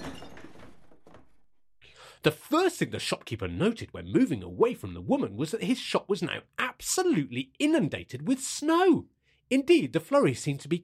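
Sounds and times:
glass snow globe shattering on a hard floor: 0.0s - 1.0s
speech: 2.2s - 10.8s.

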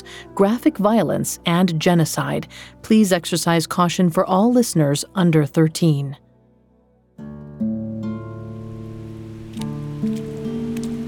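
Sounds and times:
soft sustained musical chords: 0.0s - 11.0s
speech: 0.4s - 6.2s
storm rain hissing: 8.5s - 11.0s.

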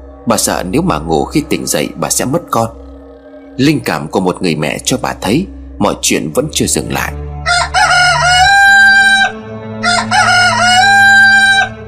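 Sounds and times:
speech: 0.2s - 2.8s, 3.6s - 7.6s
rooster crowing at dawn: 7.4s - 11.8s.

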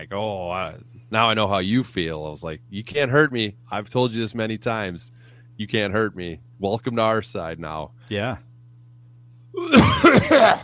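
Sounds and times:
speech: 0.0s - 8.5s, 9.6s - 10.6s
person coughing: 9.6s - 10.6s.

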